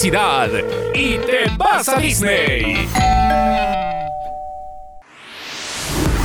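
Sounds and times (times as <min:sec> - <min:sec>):
speech: 0:00.0 - 0:04.0
doorbell ding-dong chime: 0:02.9 - 0:05.0
rising rush of noise like a whoosh: 0:05.0 - 0:06.2.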